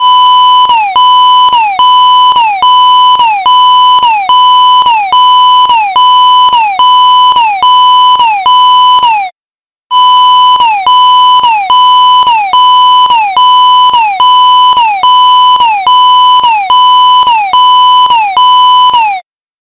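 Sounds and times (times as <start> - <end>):
clock alarm ringing: 0.0 - 9.3, 9.9 - 19.2.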